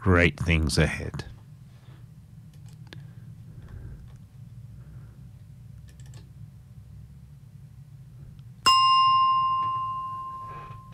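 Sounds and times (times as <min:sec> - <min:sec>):
speech: 0:00.0 - 0:01.3
low hum: 0:00.0 - 0:10.9
single bell strike ringing: 0:08.6 - 0:10.9.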